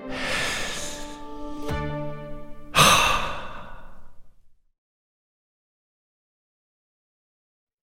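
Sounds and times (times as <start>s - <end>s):
slow deep breath with sighing exhale: 0.1s - 4.6s.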